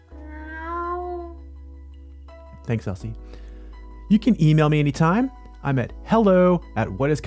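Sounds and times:
cat meowing in a headquarters: 0.1 - 1.4
speech: 2.7 - 3.4, 4.1 - 7.2.

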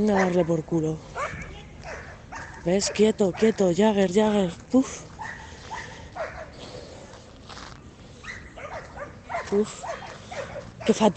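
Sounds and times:
speech: 0.0 - 1.1, 2.6 - 5.1, 9.5 - 9.9, 10.9 - 11.1
dog barking and whimpering: 0.0 - 3.7, 5.2 - 6.6, 8.2 - 11.1.

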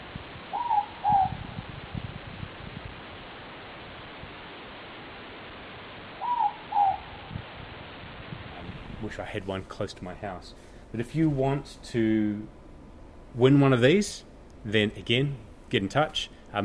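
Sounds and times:
steady hiss: 0.0 - 16.6
morepork owl hooting at night: 0.5 - 1.6, 6.2 - 7.4
speech: 9.1 - 12.6, 13.3 - 16.6.

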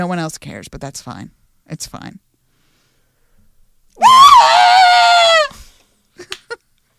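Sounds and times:
speech: 0.0 - 2.3
woman's loud high-pitched scream: 4.0 - 5.6.

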